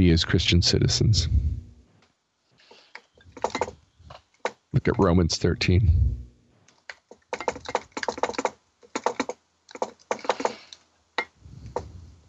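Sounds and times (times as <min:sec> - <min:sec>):
speech: 0:00.0 - 0:01.5, 0:04.7 - 0:06.2
typing on a computer keyboard: 0:03.4 - 0:03.8, 0:06.9 - 0:10.8.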